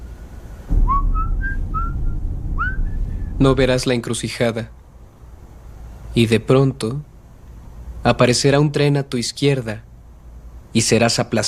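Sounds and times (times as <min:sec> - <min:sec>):
steady low rumble: 0:00.0 - 0:06.2
person whistling a short wandering melody: 0:00.8 - 0:02.0, 0:02.6 - 0:02.9
speech: 0:03.4 - 0:04.8, 0:06.1 - 0:07.1, 0:08.0 - 0:09.9, 0:10.7 - 0:11.4.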